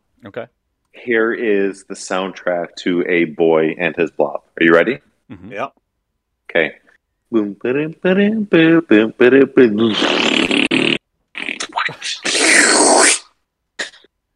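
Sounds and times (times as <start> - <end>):
speech: 0.2 - 5.8, 6.5 - 10.5
person vocally imitating video game sound effects as farts: 9.7 - 14.1.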